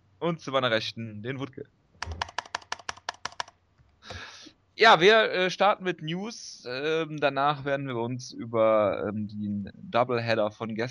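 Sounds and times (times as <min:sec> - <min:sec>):
speech: 0:00.2 - 0:02.3, 0:04.8 - 0:10.9
computer mouse clicks: 0:02.0 - 0:04.2.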